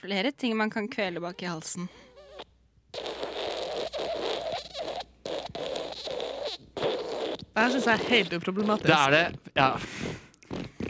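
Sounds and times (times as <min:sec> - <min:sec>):
speech: 0:00.0 - 0:02.1, 0:07.6 - 0:10.2
long wet sputtering fart sound effect: 0:02.2 - 0:09.3, 0:10.4 - 0:10.8.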